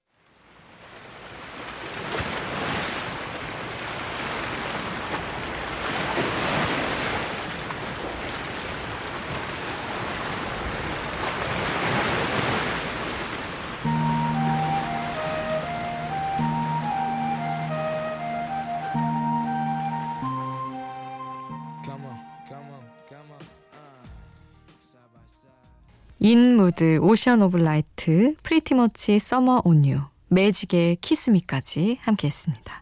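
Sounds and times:
ocean waves breaking: 0.4 - 22.4
soft musical melody: 13.8 - 23.4
speech: 26.3 - 32.8.

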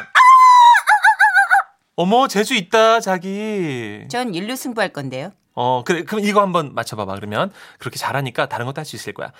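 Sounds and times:
person imitating a rooster crowing: 0.0 - 1.8
speech: 2.0 - 9.3.

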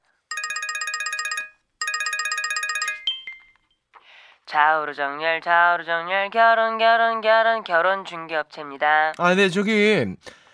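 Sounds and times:
warbling electronic telephone rings: 0.3 - 3.7
speech: 4.5 - 10.4.

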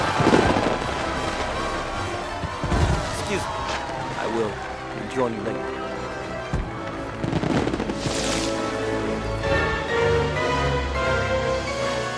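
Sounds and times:
fireworks crackling and bursting at a party: 0.0 - 4.7, 6.5 - 9.0
orchestral music: 0.0 - 12.1
speech: 4.4 - 5.8.

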